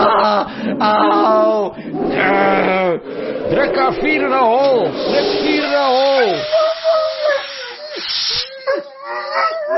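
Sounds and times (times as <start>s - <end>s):
speech: 0.4s - 6.7s
large polar bear hissing and moaning: 1.8s - 8.7s.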